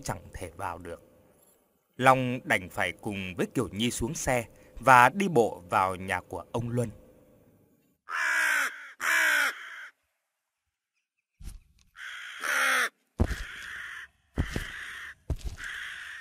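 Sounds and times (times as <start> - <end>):
speech: 0.0 - 1.1, 2.0 - 7.0
crow cawing loudly on a wooden post: 8.1 - 10.0, 11.9 - 16.1.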